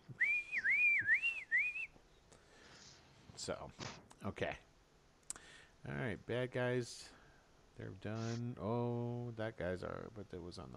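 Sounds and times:
loud sustained warbling human whistle: 0.1 - 2.0
speech: 3.4 - 4.7, 5.8 - 7.2, 7.8 - 10.7.

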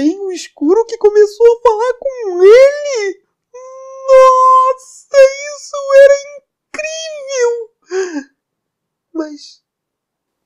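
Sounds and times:
speech: 0.0 - 3.2, 4.1 - 8.3, 9.2 - 9.6
person performing crying and whimpering in a told story: 2.2 - 6.3, 6.9 - 8.4.

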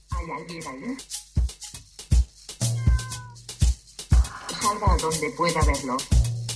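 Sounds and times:
speech: 0.2 - 1.2, 4.7 - 6.3
cat meowing: 2.7 - 3.4.

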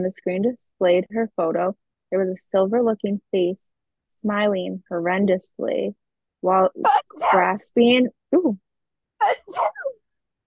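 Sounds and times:
speech: 0.0 - 8.6, 9.2 - 10.0
person sneezing: 6.8 - 7.4, 9.2 - 10.0.

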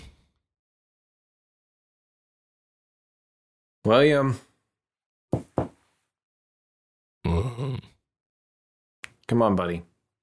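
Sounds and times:
speech: 3.8 - 4.5, 9.3 - 9.9
knocking on a door: 5.3 - 5.8.

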